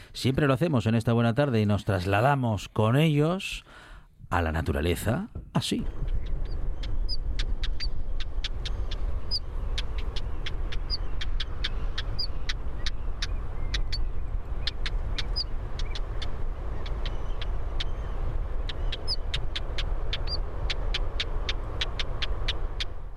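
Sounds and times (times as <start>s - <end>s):
speech: 0.2s - 6.4s
small bird calling with clicks and whistles in the hills: 6.0s - 23.1s.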